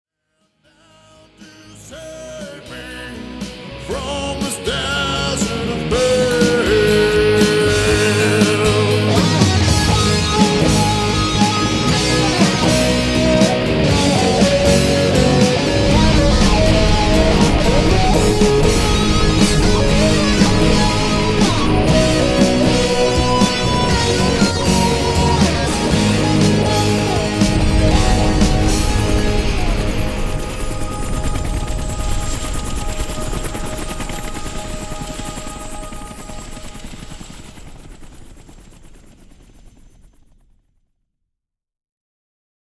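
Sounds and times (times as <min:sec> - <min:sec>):
guitar solo: 0:05.1 - 0:34.4.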